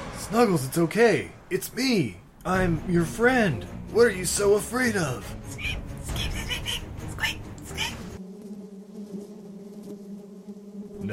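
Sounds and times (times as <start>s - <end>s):
speech: 0.3s - 6.4s
swarm of bees buzzing in a droning hum: 5.5s - 11.1s.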